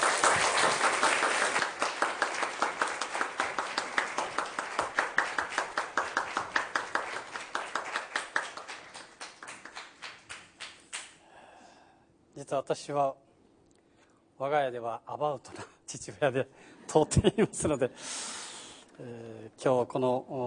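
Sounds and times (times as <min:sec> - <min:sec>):
audience applause welcoming a speaker: 0:00.0 - 0:11.1
speech: 0:12.5 - 0:13.2, 0:14.4 - 0:18.2, 0:19.0 - 0:20.4.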